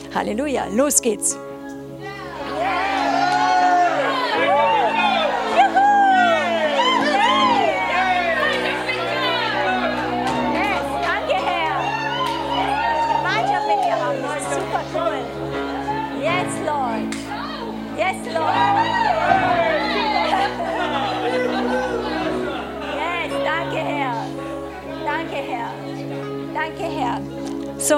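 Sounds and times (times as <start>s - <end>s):
speech: 0.2s - 1.6s
large crowd shouting and cheering joyfully: 1.6s - 27.8s
laughter: 2.2s - 26.7s.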